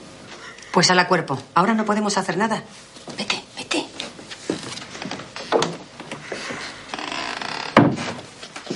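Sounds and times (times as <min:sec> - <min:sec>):
speech: 0:00.8 - 0:03.3
door shutting with a solid thud: 0:06.9 - 0:08.3.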